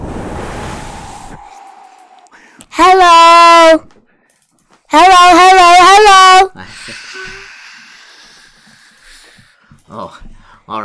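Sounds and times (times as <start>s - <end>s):
loud rush of breath blowing into a microphone: 0.0s - 2.7s
speech: 2.8s - 3.9s, 4.9s - 5.4s.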